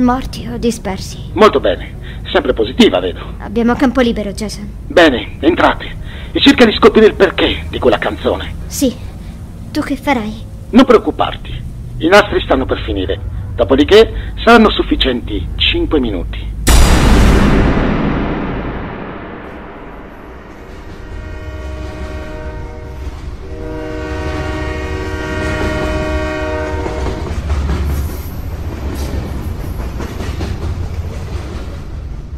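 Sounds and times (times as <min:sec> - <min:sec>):
speech: 0:00.0 - 0:09.1, 0:09.8 - 0:17.9
long train horn: 0:20.4 - 0:27.4
train rumbling and wheels clattering on tracks while pulling away: 0:25.5 - 0:32.3.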